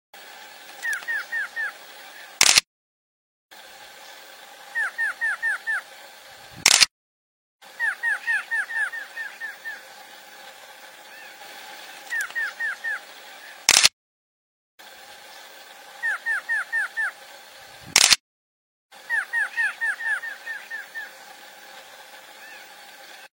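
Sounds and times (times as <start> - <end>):
choca da mata singing: 0.8 - 2.4, 4.7 - 5.9, 7.8 - 10.0, 11.1 - 13.7, 16.0 - 17.2, 19.1 - 21.2, 22.4 - 23.3.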